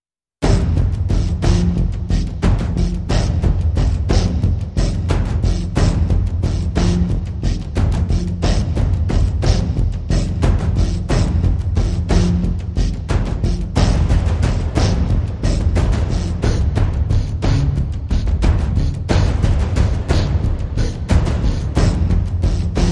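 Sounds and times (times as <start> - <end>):
percussion: 0.4 - 22.8.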